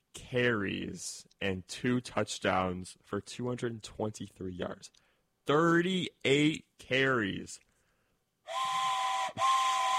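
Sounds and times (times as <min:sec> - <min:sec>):
speech: 0:00.3 - 0:07.7
train whistle blasts: 0:08.5 - 0:09.9.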